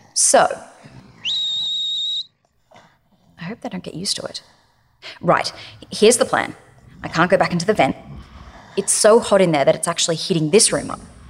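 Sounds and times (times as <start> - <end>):
speech: 0.2 - 0.7, 3.5 - 8.0, 8.8 - 11.2
faint murmuring: 0.8 - 1.6, 3.3 - 11.2
loud shrill whistle blast: 1.2 - 2.3
low rumble: 3.6 - 11.2.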